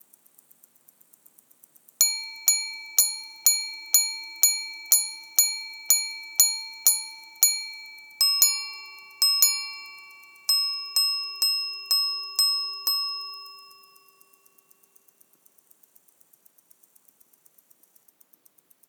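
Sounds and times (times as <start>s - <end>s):
minute repeater wristwatch chiming the time: 2.0s - 14.7s.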